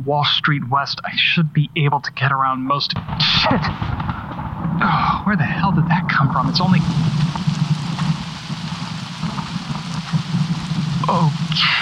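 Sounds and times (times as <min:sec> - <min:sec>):
speech: 0:00.0 - 0:07.3, 0:11.1 - 0:11.8
heavy storm rain on the metal roof of a van: 0:03.1 - 0:11.8.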